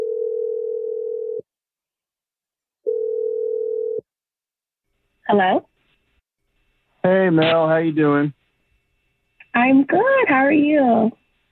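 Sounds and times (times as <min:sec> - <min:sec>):
telephone line tones while a number is being called: 0:00.0 - 0:01.4, 0:02.8 - 0:04.0
speech: 0:05.3 - 0:05.7, 0:07.0 - 0:08.4, 0:09.6 - 0:11.2.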